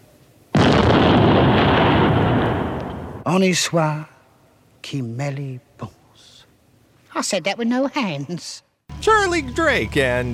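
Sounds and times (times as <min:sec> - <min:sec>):
hand grenade explosion: 0:00.6 - 0:03.3
speech: 0:03.3 - 0:04.1, 0:04.8 - 0:06.3, 0:07.2 - 0:10.3.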